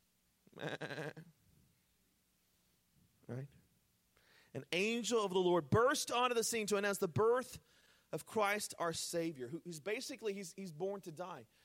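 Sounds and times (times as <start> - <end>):
speech: 0.6 - 1.2, 4.6 - 11.6
sheep bleating: 0.6 - 1.3.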